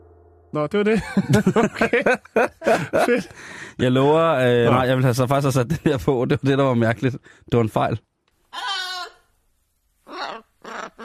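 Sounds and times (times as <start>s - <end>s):
speech: 0.5s - 8.7s
laughter: 0.9s - 4.8s
three-year-old African grey parrot giving nasal bleating calls: 8.5s - 9.3s, 10.0s - 11.0s.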